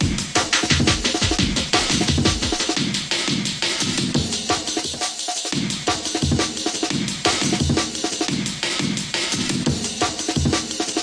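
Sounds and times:
stereo dueling drum break loops: 0:00.0 - 0:11.0.

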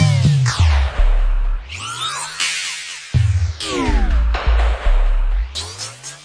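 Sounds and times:
sea sick sub bass drop: 0:00.0 - 0:02.0, 0:03.2 - 0:05.8.

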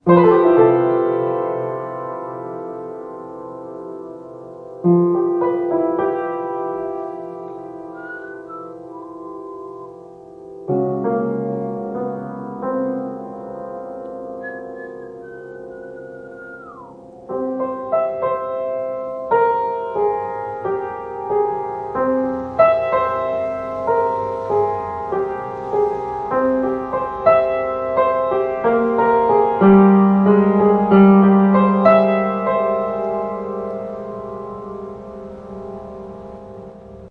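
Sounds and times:
piano: 0:00.0 - 0:37.1
whistling: 0:07.4 - 0:10.2, 0:14.3 - 0:17.2.

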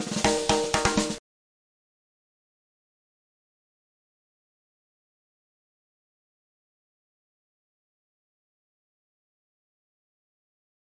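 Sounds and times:
120 bpm snare drum intro: 0:00.0 - 0:01.2.

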